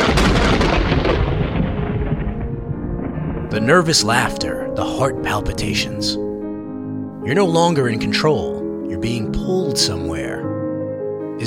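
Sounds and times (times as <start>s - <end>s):
lightning bolt strike thunder crack and rumble: 0.0s - 6.3s
speech: 3.6s - 6.2s, 7.2s - 10.5s.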